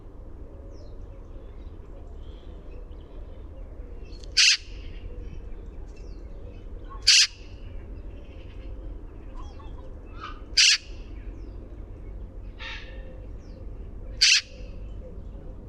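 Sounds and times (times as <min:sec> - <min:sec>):
faint bird calls: 0:00.0 - 0:15.6
low background rumble: 0:00.0 - 0:15.6
Eurasian magpie Pica pica uttering harsh chattering notes: 0:10.6 - 0:11.0, 0:14.2 - 0:14.7.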